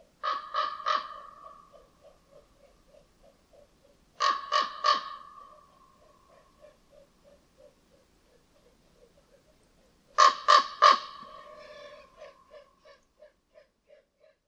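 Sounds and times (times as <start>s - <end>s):
raven giving harsh rapid croaks: 0.0s - 3.0s, 3.6s - 7.8s, 10.2s - 12.7s.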